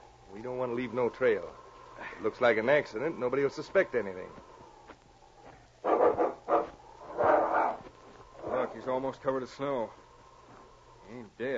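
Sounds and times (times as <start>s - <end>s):
speech: 0.4s - 4.5s, 8.8s - 10.0s, 11.1s - 11.5s
dog barking while attacking a man in the snow: 5.8s - 8.8s.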